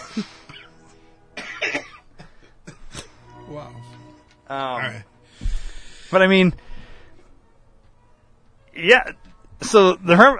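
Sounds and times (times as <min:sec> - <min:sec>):
harsh coughing: 0:00.0 - 0:00.8, 0:01.4 - 0:03.2
speech: 0:00.2 - 0:00.4, 0:03.5 - 0:05.1, 0:06.1 - 0:06.7, 0:08.8 - 0:10.3.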